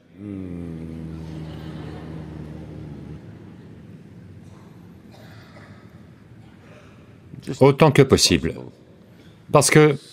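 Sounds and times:
low closed-mouth hum of a mantra: 0:00.0 - 0:06.6
soft breathy noise: 0:00.0 - 0:07.3
speech: 0:00.2 - 0:00.4, 0:07.4 - 0:08.8, 0:09.5 - 0:10.1.

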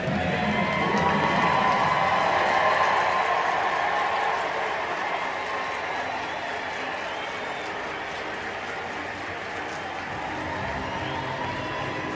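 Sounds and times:
large baseball stadium crowd applauding and cheering: 0:00.0 - 0:12.1.

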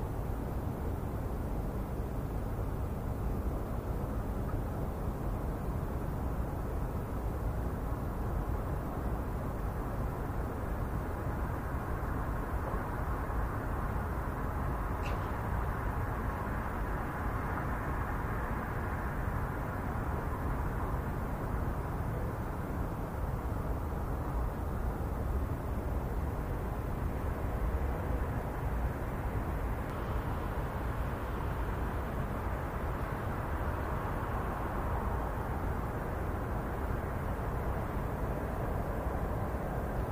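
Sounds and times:
low rumble of traffic and machinery in a harbor town: 0:00.0 - 0:40.0
faint high tick: 0:29.8 - 0:30.0.

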